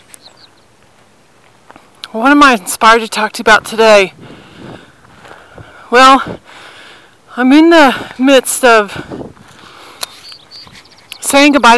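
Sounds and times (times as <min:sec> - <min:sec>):
bird chirps: 0:00.0 - 0:00.9, 0:09.1 - 0:11.7
speech: 0:02.1 - 0:04.3, 0:05.9 - 0:06.6, 0:07.4 - 0:09.2, 0:11.3 - 0:11.7.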